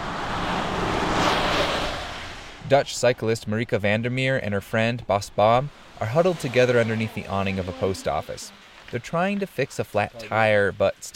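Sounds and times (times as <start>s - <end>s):
traffic roaring on a rainy highway through a small town: 0.0s - 2.9s, 5.2s - 11.1s
speech: 2.7s - 11.1s.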